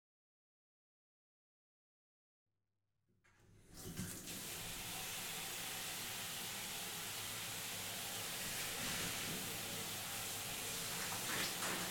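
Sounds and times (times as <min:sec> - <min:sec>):
running warm water rinsing shampoo from hair: 0:03.7 - 0:11.8.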